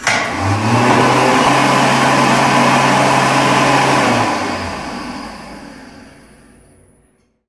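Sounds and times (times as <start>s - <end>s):
hand dryer running: 0.0s - 7.0s.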